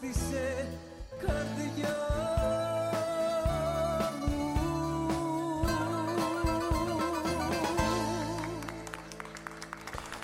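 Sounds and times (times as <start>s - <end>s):
sung melody with strong vibrato: 0.0s - 9.2s
instrumental backing: 0.0s - 10.2s
audience applause: 8.3s - 10.2s.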